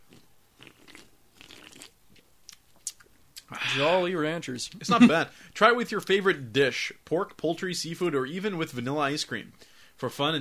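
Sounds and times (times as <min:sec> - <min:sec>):
person slurping and gulping a big sip of a drink: 0:00.0 - 0:03.9
speech: 0:03.6 - 0:10.4.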